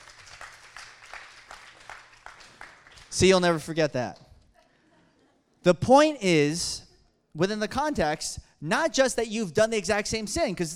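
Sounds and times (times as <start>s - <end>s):
crowd applauding: 0.0s - 3.8s
speech: 3.2s - 4.2s, 5.6s - 6.7s, 7.4s - 10.7s.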